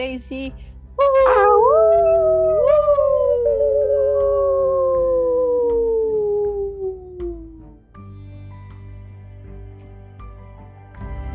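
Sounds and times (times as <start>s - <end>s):
speech: 0.0s - 1.4s
several people howling in imitation of wolves: 1.0s - 7.8s.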